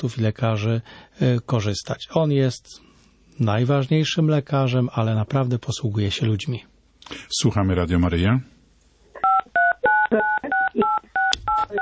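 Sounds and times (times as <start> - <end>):
speech: 0.0 - 8.5, 10.1 - 10.5
telephone keypad tones from a caller pressing keys on a poor connection: 9.2 - 11.8.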